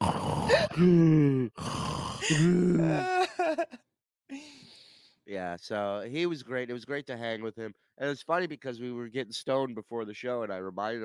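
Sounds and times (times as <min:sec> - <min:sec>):
voice imitating heavy snoring of a knocked-out fighter: 0:00.0 - 0:03.0
speech: 0:00.8 - 0:04.6, 0:05.3 - 0:11.0.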